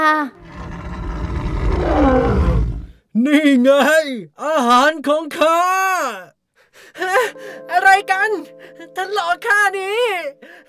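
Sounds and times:
lion roaring threateningly: 0:00.4 - 0:03.0
speech: 0:03.2 - 0:06.3, 0:07.0 - 0:10.6.

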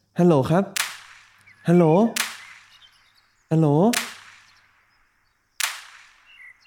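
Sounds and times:
man calling out: 0:00.2 - 0:00.8, 0:01.7 - 0:02.3, 0:03.5 - 0:04.2
speech: 0:00.2 - 0:00.8, 0:01.7 - 0:02.2, 0:03.5 - 0:04.1
sharp loud gunshots heard over a phone call: 0:00.7 - 0:06.6.

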